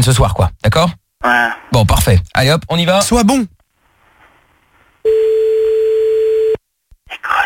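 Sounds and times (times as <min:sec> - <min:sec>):
speech: 0:00.0 - 0:03.6
ringing tone on an outgoing telephone call: 0:05.1 - 0:06.6.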